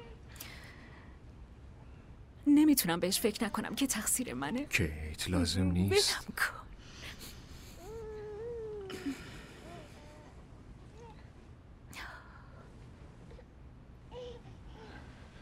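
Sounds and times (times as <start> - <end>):
speech: 2.5 - 6.6
baby whimpering: 7.7 - 11.3.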